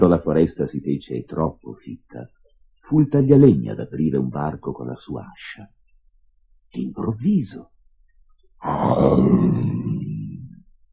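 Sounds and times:
speech: 0.0s - 5.8s, 6.7s - 7.7s, 8.6s - 10.0s
lion roaring: 8.6s - 10.5s.

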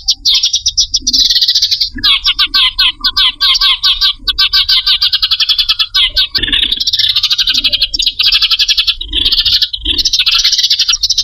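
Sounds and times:
bird lure call chirping in sharp bursts: 0.0s - 11.2s.

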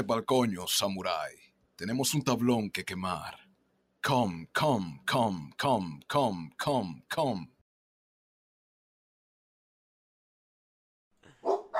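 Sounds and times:
speech: 0.0s - 3.4s, 4.0s - 7.5s
dogs yapping faintly in the background: 11.3s - 11.7s.

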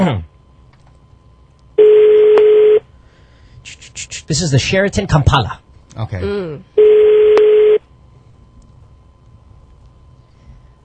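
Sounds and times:
speech: 0.0s - 0.3s, 4.3s - 7.0s
ringback tone of an outgoing phone call to a hotel in Kampala: 1.8s - 2.8s, 6.8s - 7.8s.

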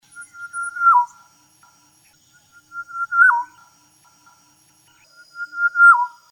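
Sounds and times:
black-naped oriole singing clear whistled phrases: 0.2s - 1.2s, 2.5s - 3.6s, 5.3s - 6.3s.

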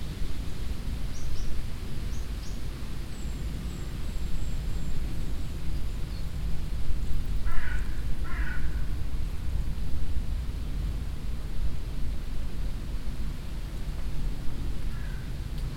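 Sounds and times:
gusting wind in trees and bushes: 0.0s - 15.7s
crow cawing: 7.4s - 8.9s, 14.9s - 15.7s.

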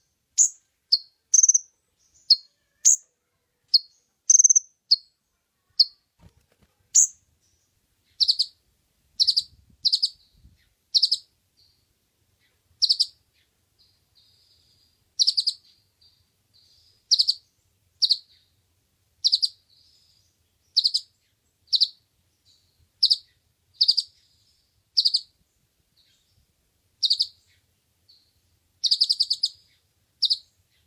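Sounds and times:
Oriental magpie-robin singing: 0.4s - 3.1s, 3.7s - 5.1s, 7.0s - 8.6s, 9.2s - 11.8s, 12.4s - 13.5s, 14.2s - 18.5s, 19.2s - 24.4s, 25.0s - 25.3s, 27.0s - 30.8s.

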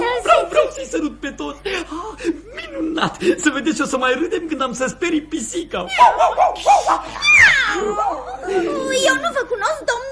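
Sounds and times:
laughter: 0.0s - 5.0s, 5.9s - 9.6s
speech: 0.8s - 2.4s, 3.0s - 10.1s
dog yipping: 6.0s - 7.8s.

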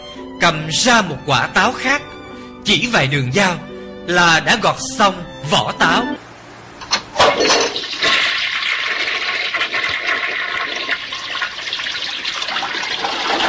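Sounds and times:
speech: 0.2s - 6.2s
hot water rushing into a bathtub: 7.5s - 13.4s.

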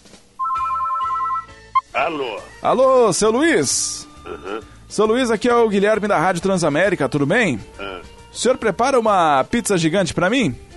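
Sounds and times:
ringback tone of an outgoing phone call: 0.4s - 1.9s
speech: 2.0s - 10.7s.

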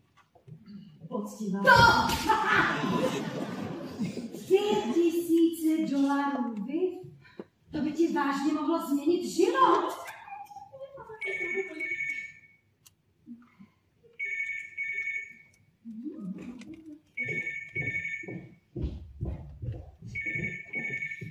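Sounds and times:
speech: 1.2s - 3.4s, 4.6s - 7.0s, 7.8s - 10.0s
laughter: 2.1s - 5.4s, 10.0s - 12.2s
telephone ringing with bright electronic trilling in a stage musical: 11.2s - 12.6s, 14.2s - 15.6s, 17.2s - 18.6s, 20.2s - 21.3s.

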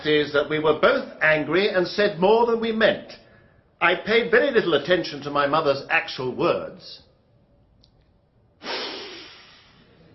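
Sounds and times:
speech: 0.0s - 3.2s, 3.8s - 7.0s
sharp scornful incredulous sniff from a man: 8.6s - 10.1s.

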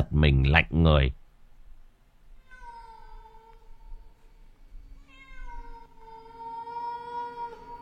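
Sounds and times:
speech: 0.0s - 1.2s
cat meowing: 2.4s - 4.2s, 5.0s - 7.8s.

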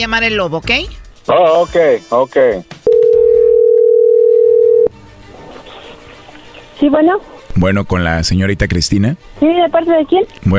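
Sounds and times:
speech: 0.0s - 2.8s, 6.8s - 10.5s
telephone dial tone while a call is being placed: 2.9s - 4.9s.

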